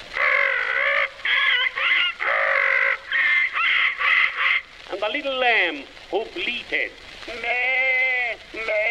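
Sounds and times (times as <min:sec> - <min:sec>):
parrot squawking: 0:00.2 - 0:04.7
speech: 0:05.0 - 0:07.8.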